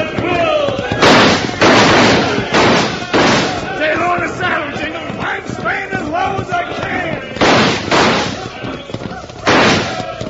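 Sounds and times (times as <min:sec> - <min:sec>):
busy noise: 0:00.0 - 0:10.2
rifles firing in rough bursts: 0:00.9 - 0:04.0, 0:07.4 - 0:08.8, 0:09.4 - 0:10.2.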